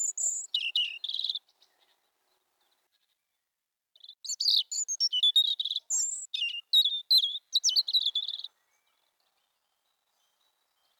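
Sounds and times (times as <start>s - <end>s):
European robin singing high thin whistles and twittering notes: 0.0s - 1.4s, 4.0s - 8.5s.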